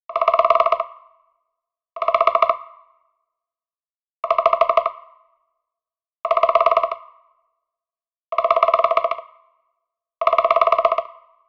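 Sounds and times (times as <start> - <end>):
woodpecker: 0.1 - 1.1, 2.0 - 2.9, 4.2 - 5.3, 6.3 - 7.2, 8.3 - 9.5, 10.2 - 11.4.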